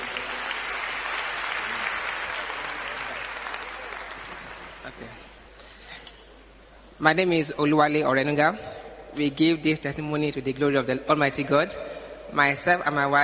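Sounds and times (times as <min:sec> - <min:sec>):
large audience applauding at a Christian gathering: 0:00.0 - 0:05.2
speech: 0:05.0 - 0:05.2, 0:07.0 - 0:13.2.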